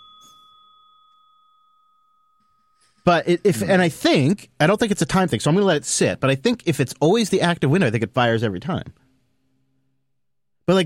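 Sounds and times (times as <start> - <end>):
computer notification bell ding triggered by pressing a button: 0.0 - 3.0
speech: 3.1 - 9.0.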